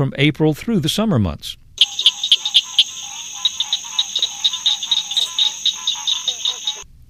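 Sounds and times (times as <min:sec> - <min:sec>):
speech: 0:00.0 - 0:01.6
high-pitched insect drone: 0:01.8 - 0:06.8
tree frog calling in sharp metallic clicking notes: 0:01.8 - 0:06.8.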